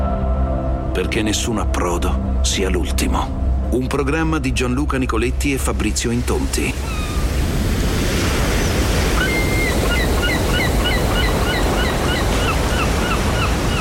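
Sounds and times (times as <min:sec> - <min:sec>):
speech: 0:01.0 - 0:07.2
rough sea waves churning: 0:05.1 - 0:13.7
quick high bird chirps: 0:06.8 - 0:07.3, 0:09.2 - 0:13.7.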